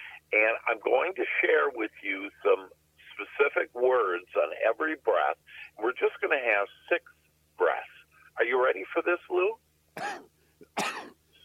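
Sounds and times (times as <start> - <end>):
speech: 0.3 - 11.2
harsh coughs: 10.0 - 11.2.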